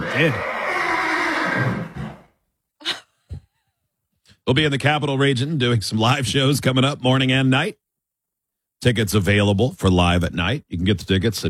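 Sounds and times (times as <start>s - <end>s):
horse whinny: 0.0s - 2.4s
speech: 0.2s - 0.5s, 4.5s - 7.8s, 8.8s - 11.4s.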